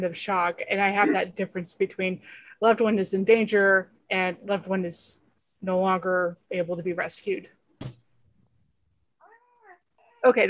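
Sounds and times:
speech: 0.0 - 7.6, 10.2 - 10.4
cat meowing: 9.2 - 10.2.

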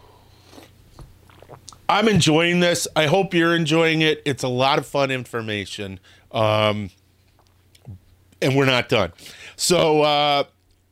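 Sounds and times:
faint steady hum: 0.0 - 10.9
person sipping a drink: 0.1 - 1.9
swallowing: 0.4 - 1.9
speech: 1.9 - 7.0, 7.9 - 10.5.

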